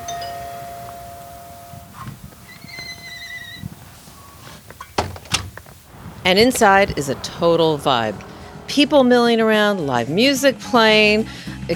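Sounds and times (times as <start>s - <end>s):
shop door bell chime: 0.0s - 2.2s
speech: 6.3s - 11.7s.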